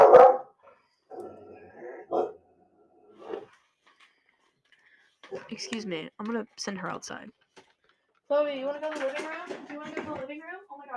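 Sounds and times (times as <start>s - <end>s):
female dog barking: 0.0s - 2.5s, 3.2s - 3.5s
female dog growling: 1.1s - 3.5s
speech: 5.4s - 7.4s, 8.3s - 10.7s.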